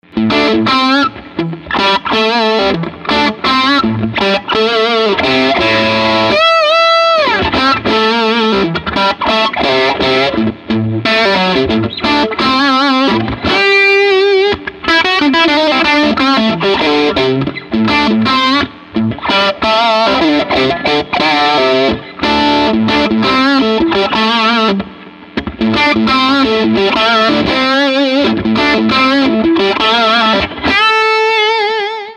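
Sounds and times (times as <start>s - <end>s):
Telecaster electric guitar boogie through 6V6 amplifier: 0.0s - 32.1s.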